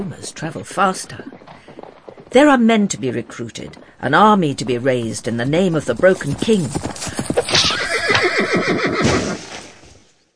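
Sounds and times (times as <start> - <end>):
speech: 0.0 - 1.4, 2.3 - 7.7
pounding hoofbeats: 0.6 - 9.5
horse neighing: 7.3 - 9.5.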